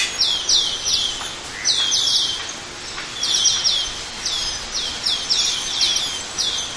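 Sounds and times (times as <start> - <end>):
Asian glossy starling high metallic buzzy chirps: 0.0 - 6.7.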